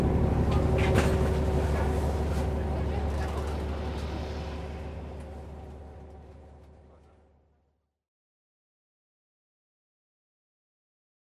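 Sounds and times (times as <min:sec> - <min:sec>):
road noise inside a moving bus in Jeju: 0:00.0 - 0:07.0
bus engine rumble heard from inside a moving bus in Jeju: 0:00.0 - 0:07.3
faint whine: 0:00.0 - 0:07.5.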